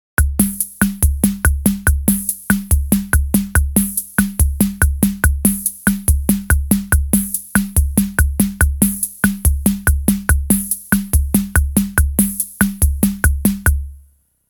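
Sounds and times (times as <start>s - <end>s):
beguine rhythm: 0.2s - 14.0s.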